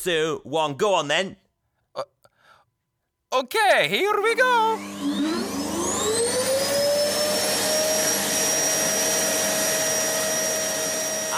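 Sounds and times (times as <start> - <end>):
speech: 0.0 - 1.4, 2.0 - 2.2, 3.3 - 5.2
vacuum cleaner running: 4.8 - 11.3.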